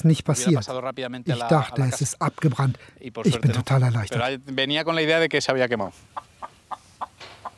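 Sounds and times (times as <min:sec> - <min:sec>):
speech: 0:00.0 - 0:06.2
chicken giving a drawn-out squawking call: 0:06.1 - 0:07.5.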